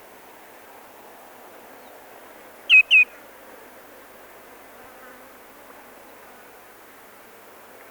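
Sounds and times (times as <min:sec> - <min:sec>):
faint background hiss: 0:00.0 - 0:07.9
common greenshank giving a clear ringing two-note call: 0:02.7 - 0:03.1.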